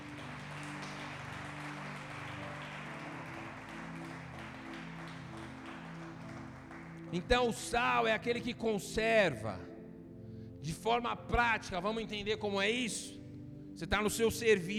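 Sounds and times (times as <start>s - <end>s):
church audience applauding: 0.0s - 8.3s
sustained keyboard chords: 0.0s - 14.7s
speech: 7.1s - 9.6s, 10.8s - 13.2s, 13.8s - 14.7s.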